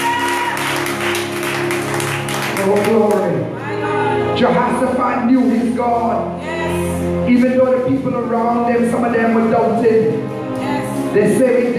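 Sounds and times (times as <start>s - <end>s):
crowd applause: 0.0s - 3.2s
steady sustained musical tones humming: 0.0s - 11.7s
speech: 2.6s - 3.6s, 4.4s - 10.3s, 11.1s - 11.7s.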